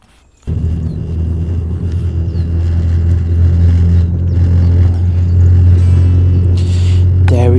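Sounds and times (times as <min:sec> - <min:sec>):
spaceship engines roaring as ship takes off: 0:00.5 - 0:07.5.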